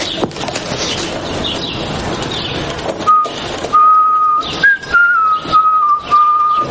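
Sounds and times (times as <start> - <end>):
rough noise: 0.0 - 6.6
man whistling a melody: 3.1 - 6.6.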